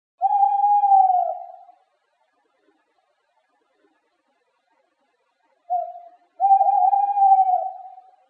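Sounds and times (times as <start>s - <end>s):
owl hooting: 0.2s - 1.9s, 5.7s - 8.2s.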